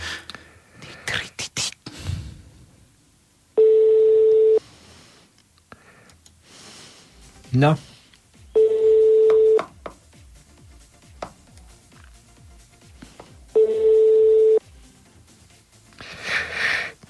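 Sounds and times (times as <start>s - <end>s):
phone ringing with long electronic tones: 3.6s - 4.6s, 8.6s - 9.7s, 13.5s - 14.6s
speech: 7.6s - 7.9s.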